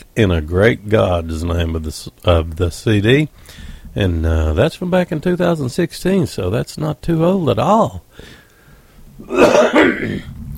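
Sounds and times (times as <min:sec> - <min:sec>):
speech: 0:00.2 - 0:08.4, 0:09.2 - 0:10.4
rough cough: 0:09.2 - 0:10.4
throat clearing: 0:09.2 - 0:10.4.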